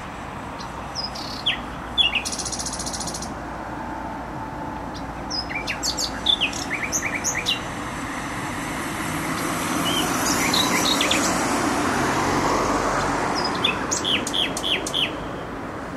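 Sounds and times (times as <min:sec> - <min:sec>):
nightingale singing in bushes in Warsaw, Poland: 0:00.0 - 0:03.4, 0:04.8 - 0:07.8, 0:09.3 - 0:11.5, 0:13.0 - 0:15.5
heavy motorway road noise in Warsaw, Poland: 0:00.0 - 0:15.9.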